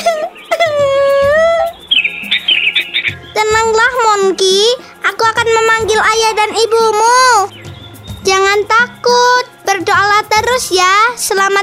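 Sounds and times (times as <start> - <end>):
long wavering high-pitched wail: 0.0 - 1.8
sooty-headed bulbul chirping in a tree: 0.0 - 5.0, 5.7 - 9.6
speech: 3.4 - 7.6, 8.2 - 11.6.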